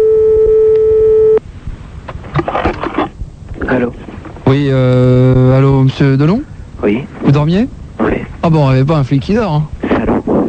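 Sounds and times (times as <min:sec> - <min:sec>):
telephone ringback tone on an outgoing call: 0:00.0 - 0:01.4
faint scattered noises: 0:01.4 - 0:10.4
speech: 0:04.5 - 0:05.2, 0:06.0 - 0:06.4, 0:07.4 - 0:07.8, 0:08.4 - 0:09.7.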